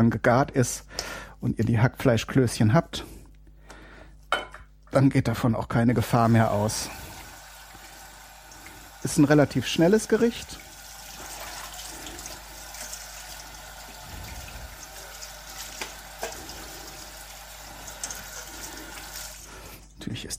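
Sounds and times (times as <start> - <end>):
speech: 0.0 - 3.2, 4.3 - 7.1, 9.0 - 10.6
running tap water: 6.0 - 20.0.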